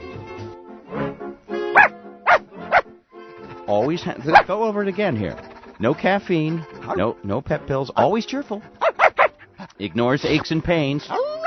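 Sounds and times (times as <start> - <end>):
puppy barking: 1.8 - 2.9, 4.2 - 4.5, 8.8 - 9.5, 11.1 - 11.4
speech: 3.7 - 8.8, 9.8 - 11.2.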